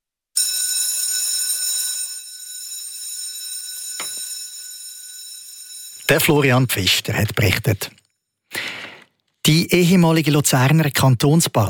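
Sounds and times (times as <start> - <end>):
electric school bell ringing through schoolrooms: 0.4 - 7.0
speech: 6.1 - 8.0, 9.5 - 11.6.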